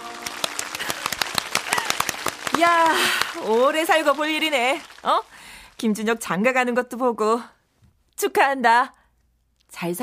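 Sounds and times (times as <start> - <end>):
crowd of wedding guests applauding the bride and groom's march: 0.0 - 5.8
speech: 2.6 - 7.6, 8.2 - 9.0, 9.7 - 10.0.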